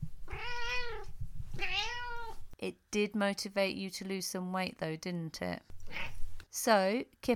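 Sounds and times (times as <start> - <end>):
faint low rumble: 0.0 - 2.6
cat meowing: 0.3 - 2.4, 5.8 - 6.2
speech: 2.6 - 7.3.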